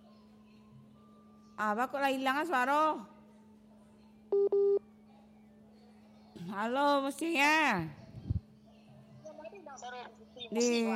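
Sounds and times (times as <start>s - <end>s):
faint steady hum: 0.0s - 10.9s
speech: 1.6s - 3.1s, 6.5s - 8.0s, 9.8s - 10.9s
telephone keypad beeps while reconnecting a call: 4.3s - 4.8s.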